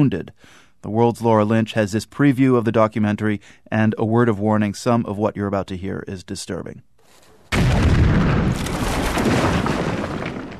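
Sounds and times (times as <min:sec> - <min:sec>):
speech: 0:00.0 - 0:08.0
roadside bomb blast striking a military target: 0:07.5 - 0:10.5.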